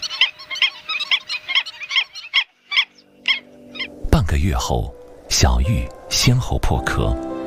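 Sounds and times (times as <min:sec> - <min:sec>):
breeding colony of black-winged stilts calling in a wetland: 0:00.0 - 0:04.0
speech: 0:04.4 - 0:07.3.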